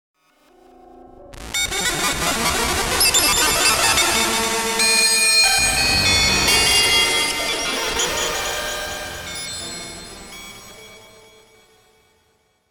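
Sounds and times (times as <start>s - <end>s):
nightmarish synth effect: 0.6s - 10.4s.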